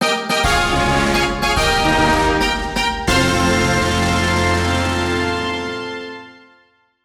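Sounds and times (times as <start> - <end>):
achievement fanfare: 0.0 - 6.5.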